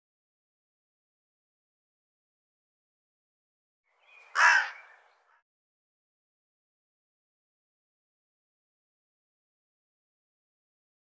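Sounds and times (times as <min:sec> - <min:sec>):
harsh hoarse bird call: 0:04.1 - 0:05.4.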